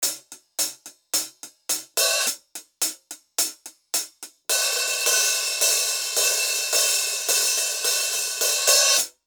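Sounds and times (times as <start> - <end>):
drum loop with cymbals: 0.0 - 9.2.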